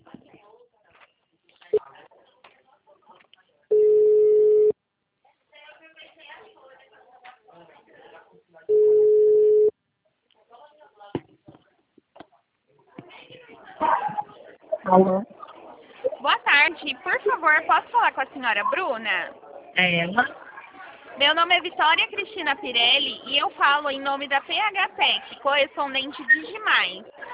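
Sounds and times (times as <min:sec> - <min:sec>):
faint voices and chatter: 0:00.0 - 0:27.3
telephone ringback tones on an outgoing call: 0:08.7 - 0:09.7
speech: 0:14.9 - 0:15.3, 0:17.4 - 0:20.4, 0:21.2 - 0:27.1.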